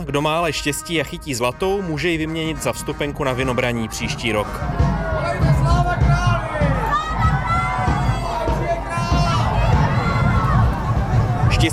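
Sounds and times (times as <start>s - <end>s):
speech: 0.0s - 5.5s, 11.6s - 11.7s
dense outdoor crowd chattering at a festive historical street procession: 1.9s - 11.7s
excited shouts from the crowd: 4.7s - 11.6s.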